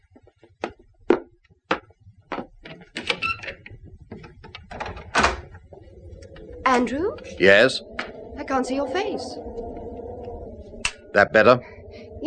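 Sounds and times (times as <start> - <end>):
cottage door being unlocked and opened: 2.6 - 5.5
speech: 6.7 - 7.9, 8.5 - 9.6, 11.1 - 12.2.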